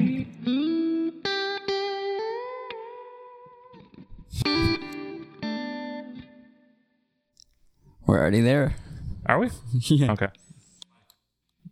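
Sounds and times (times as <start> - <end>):
clean electric guitar notes and chords played through a reverb amp: 0.0 - 7.2
speech: 8.1 - 10.4.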